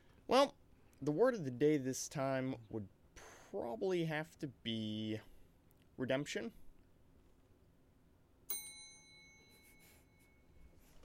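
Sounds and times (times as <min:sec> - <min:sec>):
speech: 0:00.3 - 0:05.3, 0:06.0 - 0:06.6
small bell struck: 0:08.5 - 0:10.6.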